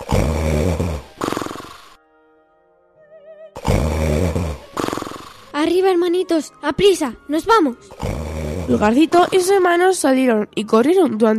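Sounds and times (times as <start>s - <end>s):
ogre snoring loudly: 0.0s - 2.0s, 3.6s - 5.6s, 7.9s - 9.8s
speech: 5.6s - 11.3s.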